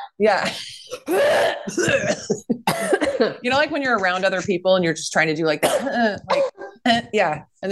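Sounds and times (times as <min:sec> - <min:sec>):
speech: 0:00.2 - 0:07.7
person coughing to dislodge cinnamon stuck in the throat: 0:00.4 - 0:03.4, 0:05.6 - 0:07.7.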